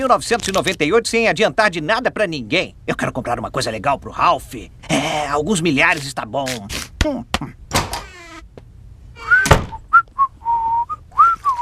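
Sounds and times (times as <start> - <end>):
speech: 0.0 - 7.6
person whistling a tune: 9.2 - 11.6.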